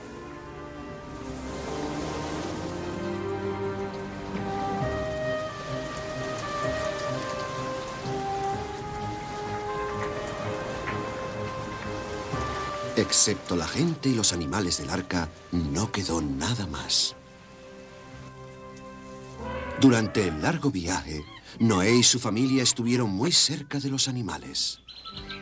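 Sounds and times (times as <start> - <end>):
heavy rain pouring down: 0.0 - 22.9
soft sustained musical tones: 0.0 - 24.4
speech: 13.1 - 17.2, 19.8 - 25.3.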